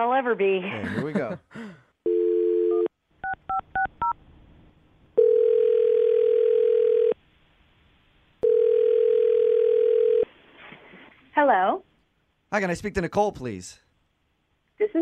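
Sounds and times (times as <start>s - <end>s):
speech: 0.0s - 1.8s, 12.6s - 13.8s
telephone dial tone: 2.1s - 3.9s, 5.2s - 7.2s, 8.4s - 10.3s.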